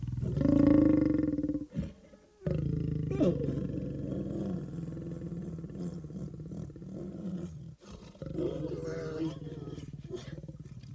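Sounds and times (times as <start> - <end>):
lion roaring: 0.2 - 10.9.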